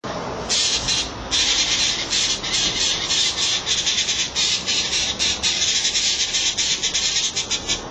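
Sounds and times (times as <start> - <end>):
San Blas jay: 0.5 - 7.9.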